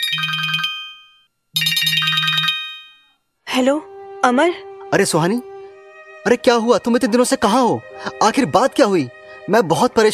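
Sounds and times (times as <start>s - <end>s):
phone ringtone for an incoming call: 0.0s - 3.2s
speech: 3.6s - 5.5s, 6.2s - 10.1s.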